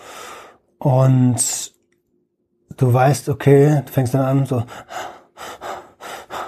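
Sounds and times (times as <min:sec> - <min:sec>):
speech: 0:00.8 - 0:01.8, 0:02.8 - 0:05.0
voice imitating panicked gasping of an asthma attack: 0:04.7 - 0:06.4.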